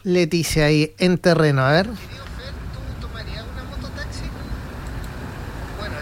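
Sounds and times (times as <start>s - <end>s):
speech: 0.0s - 2.2s
slow-moving road traffic in a jam rumbling: 1.8s - 6.0s.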